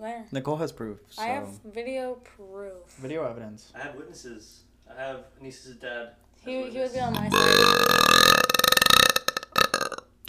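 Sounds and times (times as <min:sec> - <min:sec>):
speech: 0:00.0 - 0:08.5
loud burp: 0:07.0 - 0:10.1.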